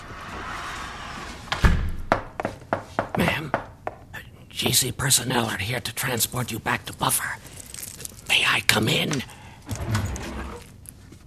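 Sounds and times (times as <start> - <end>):
door shutting: 0.4 - 2.4, 9.7 - 10.6
quiet hum: 2.1 - 11.2
speech: 3.2 - 3.6, 4.6 - 7.5, 8.7 - 9.4.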